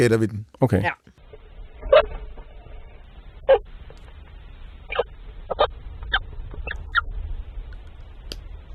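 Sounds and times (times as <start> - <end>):
speech: 0.0 - 1.1
stoats chirping in their nest: 1.2 - 7.3
quiet low rumble: 1.2 - 8.7.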